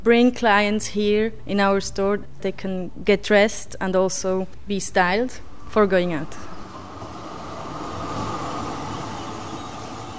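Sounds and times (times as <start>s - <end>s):
speech: 0.0s - 6.5s
tram rumbling along its rails: 6.1s - 10.1s.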